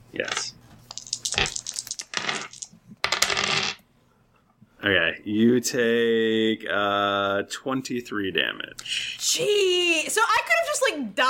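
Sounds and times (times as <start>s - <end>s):
many dice clattering on a hard tabletop: 0.2s - 3.8s
speech: 4.8s - 11.2s.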